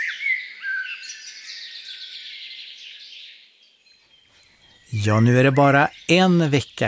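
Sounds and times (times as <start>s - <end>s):
birdsong outdoors with chirps and warbled trills: 0.0s - 6.8s
speech: 4.9s - 6.8s.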